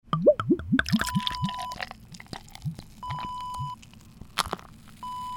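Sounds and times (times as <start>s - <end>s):
beer pouring: 0.1s - 5.2s.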